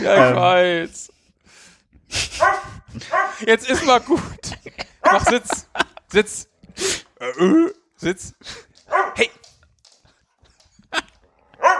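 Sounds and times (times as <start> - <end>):
speech: 0.0 - 9.4
laughter: 2.1 - 6.4, 10.4 - 11.2
dog barking: 2.4 - 3.4, 5.0 - 5.4, 8.9 - 9.3, 11.6 - 11.7.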